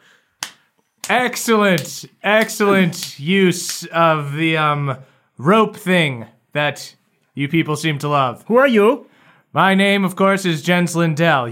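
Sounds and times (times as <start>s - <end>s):
single sharp hand clap with short echo: 0.4s - 3.9s
speech: 1.1s - 11.5s.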